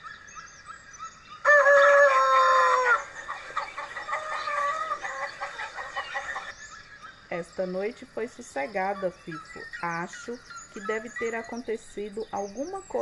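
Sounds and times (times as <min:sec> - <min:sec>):
rooster crowing at a farm henhouse: 0:01.4 - 0:06.5
hens clucking and cackling at a farm henhouse: 0:01.4 - 0:06.6
speech: 0:07.6 - 0:13.0.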